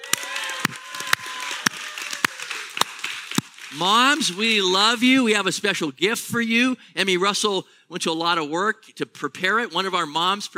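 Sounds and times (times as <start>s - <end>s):
sharp loud claps: 0.0s - 4.8s
audience applauding mothers on Mother's Day: 0.0s - 4.9s
speech: 3.7s - 10.5s.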